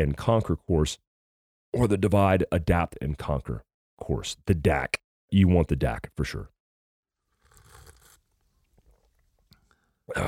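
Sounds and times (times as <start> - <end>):
speech: 0.0 - 1.1, 1.7 - 6.6, 10.1 - 10.2
slurping sip of a drink: 7.2 - 9.7
swallow: 7.3 - 10.2.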